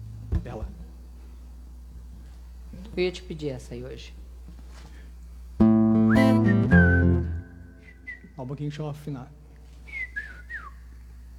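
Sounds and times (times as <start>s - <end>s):
speech: 0.3s - 0.8s, 2.7s - 4.2s, 8.4s - 9.4s
loud sustained instrumental chords: 5.6s - 7.7s
few short whistled notes sliding upward: 6.0s - 8.4s, 9.8s - 10.9s.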